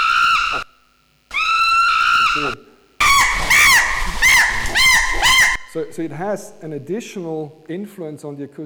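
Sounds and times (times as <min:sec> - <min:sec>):
animal screaming while being attacked: 0:00.0 - 0:00.7, 0:01.3 - 0:06.8
speech: 0:06.0 - 0:08.6.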